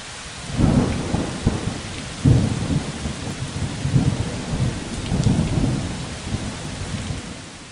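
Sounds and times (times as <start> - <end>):
heavy rain: 0.0 - 7.7
deep rumbles of thunder: 0.4 - 7.7.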